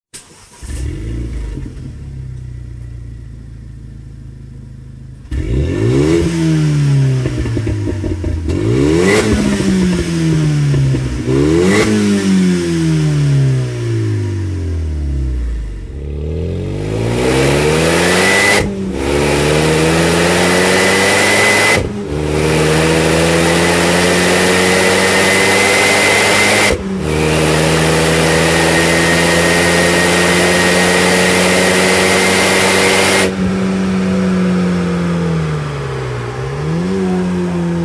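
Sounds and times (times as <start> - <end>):
Renault Mégane Coupé RS stock exhaust: 0.1 - 37.8.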